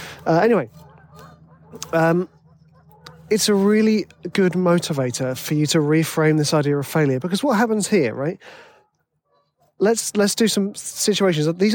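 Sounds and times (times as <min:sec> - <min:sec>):
geese honking by a river: 0:00.0 - 0:07.0
quieter outdoor noise: 0:00.0 - 0:11.7
speech: 0:00.2 - 0:00.8, 0:01.7 - 0:02.4, 0:03.3 - 0:08.7, 0:09.8 - 0:11.7.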